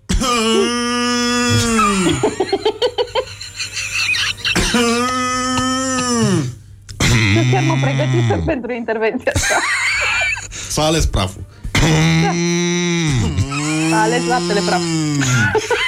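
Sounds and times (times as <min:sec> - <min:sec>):
person imitating a cow coughing with short raspy bursts: 0:00.0 - 0:02.4, 0:04.4 - 0:08.5, 0:11.8 - 0:14.1
person imitating a cow with a long loud droning moo: 0:00.2 - 0:02.2, 0:04.7 - 0:08.5, 0:11.8 - 0:15.4
speech: 0:01.5 - 0:03.2, 0:04.8 - 0:05.1, 0:07.9 - 0:12.6, 0:13.9 - 0:15.8
laughter: 0:01.9 - 0:05.4, 0:09.2 - 0:10.5, 0:15.2 - 0:15.8.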